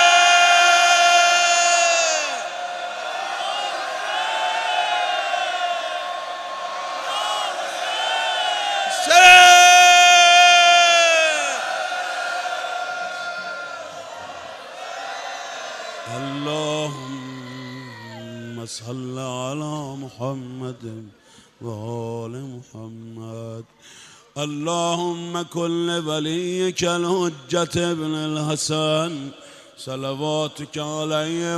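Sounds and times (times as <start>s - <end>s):
large crowd of men and women shouting a religious invocation in unison: 0.0s - 18.2s
speech: 18.8s - 19.3s, 20.2s - 22.1s, 24.4s - 31.5s.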